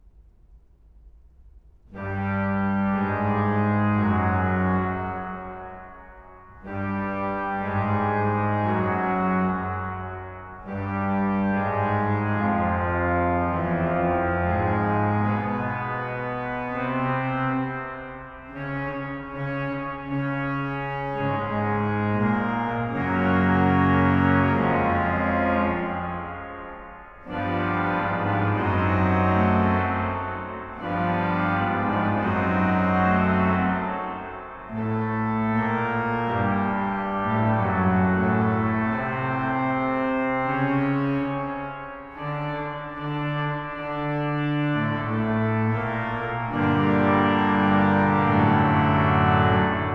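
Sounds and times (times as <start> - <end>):
organ playing a requiem: 2.2 - 5.7, 6.7 - 17.8, 18.5 - 49.9.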